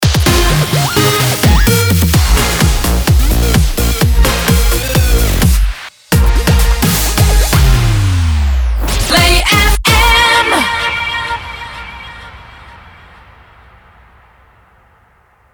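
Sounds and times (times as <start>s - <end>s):
electronic music mix in B flat minor: 0.0s - 10.9s.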